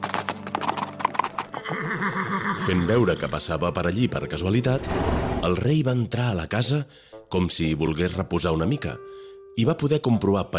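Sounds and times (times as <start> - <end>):
hooves of a fast saddled horse galloping: 0.0 - 2.9
speech: 1.9 - 10.5.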